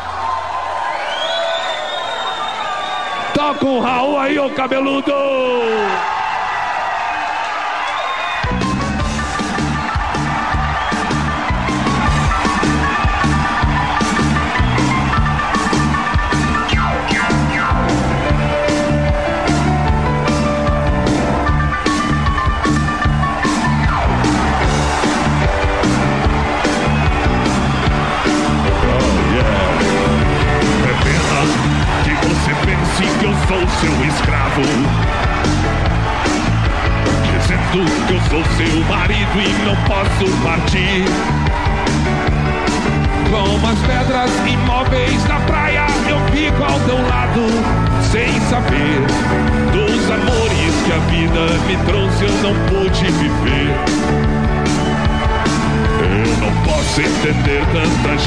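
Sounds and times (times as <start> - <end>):
crowd noise: 0.0 - 58.2
speech: 3.4 - 6.2, 32.9 - 35.9, 37.5 - 42.0, 43.3 - 54.2, 56.2 - 58.2
full band playing: 8.4 - 58.2
man singing live: 28.8 - 34.9, 37.2 - 41.3, 43.1 - 54.1, 55.8 - 58.2.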